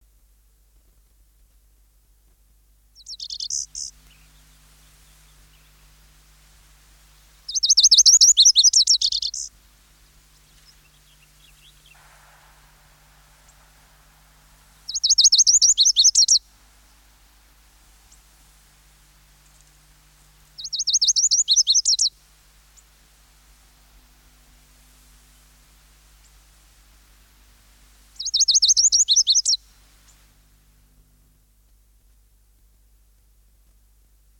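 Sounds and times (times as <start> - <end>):
lazuli bunting singing: 3.0 - 30.3.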